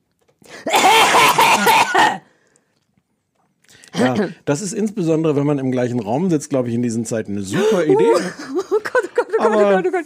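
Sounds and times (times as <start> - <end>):
loud, forceful hacking cough: 0.6 - 2.3
speech: 4.0 - 8.6, 9.4 - 10.0.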